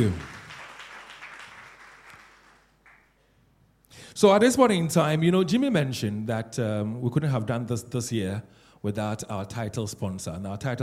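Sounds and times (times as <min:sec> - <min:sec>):
speech: 0:00.0 - 0:00.3, 0:04.2 - 0:10.8
crowd applauding: 0:00.0 - 0:03.2.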